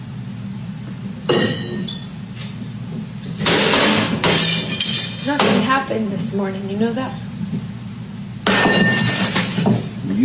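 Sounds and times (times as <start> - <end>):
steady room noise: 0.0 - 10.2
crash of breaking glass: 3.4 - 5.6, 8.5 - 9.7
scattering glass shards and clattering debris: 4.2 - 5.7, 8.5 - 9.9
speech: 5.3 - 7.6, 10.1 - 10.2.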